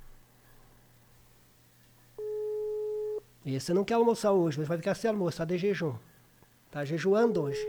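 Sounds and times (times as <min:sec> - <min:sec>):
quiet hum: 0:00.0 - 0:07.6
telephone call tone ringing unanswered: 0:02.2 - 0:03.2, 0:07.4 - 0:07.6
speech: 0:03.4 - 0:06.1, 0:06.7 - 0:07.6.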